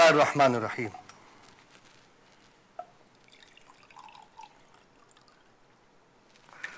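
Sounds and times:
speech: 0:00.1 - 0:01.0
soft drips and splashes of water: 0:02.8 - 0:05.5
water being poured into a cooking pot for Kashmiri tea: 0:03.1 - 0:05.6.

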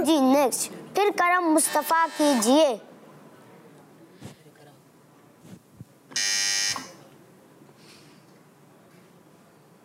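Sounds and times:
speech: 0:00.1 - 0:02.9
quiz-game buzzer blaring: 0:01.5 - 0:02.4, 0:06.1 - 0:07.0.

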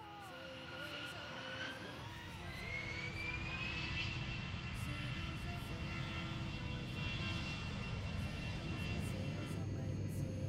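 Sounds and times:
steady loud airplane engine roar with low rumble: 0:00.0 - 0:10.4.

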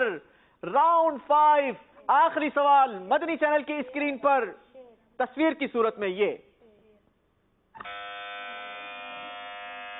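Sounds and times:
speech: 0:00.2 - 0:06.5
electronic quiz show buzzer pressed by a contestant: 0:07.8 - 0:09.9.

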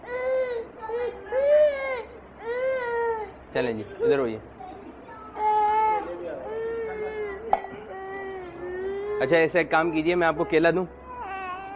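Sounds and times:
young child crying: 0:00.0 - 0:03.3, 0:05.3 - 0:09.3, 0:10.2 - 0:11.7
speech: 0:03.6 - 0:04.5, 0:09.2 - 0:11.0.

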